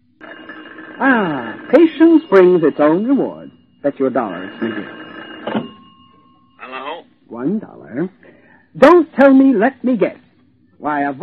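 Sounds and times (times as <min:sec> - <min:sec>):
telephone ringing with a steady electronic tone: 0:00.1 - 0:07.3
speech: 0:01.0 - 0:05.0, 0:07.4 - 0:08.2, 0:08.8 - 0:10.2, 0:10.8 - 0:11.2
telephone being picked up: 0:04.4 - 0:06.1.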